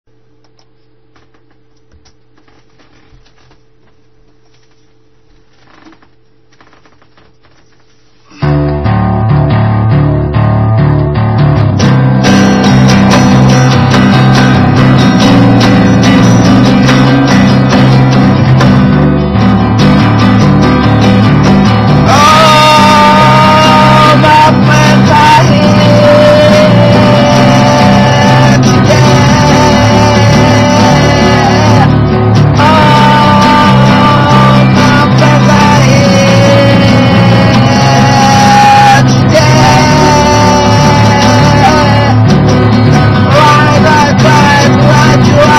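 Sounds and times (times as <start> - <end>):
acoustic bass: 5.5 - 45.5.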